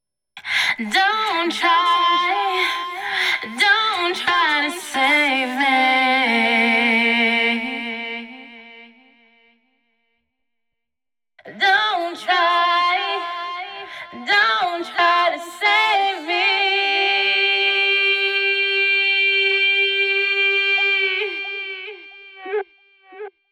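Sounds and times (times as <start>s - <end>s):
chorus vocals: 0.5s - 9.0s, 11.4s - 22.6s.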